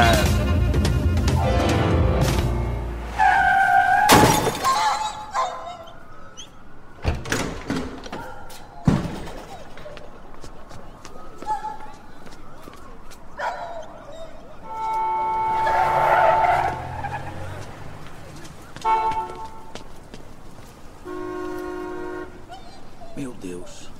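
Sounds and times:
noisy outdoor background: 0:00.0 - 0:23.9
Toyota tires screeching in a skid: 0:03.1 - 0:04.5, 0:15.4 - 0:18.6
car hitting a dog thud: 0:04.0 - 0:04.8
dog yelping and whimpering in pain: 0:04.7 - 0:06.5, 0:22.5 - 0:23.2.

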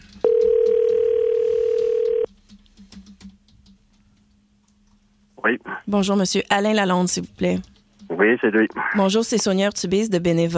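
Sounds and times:
telephone dial tone: 0:00.2 - 0:02.3
speech: 0:05.5 - 0:10.5.

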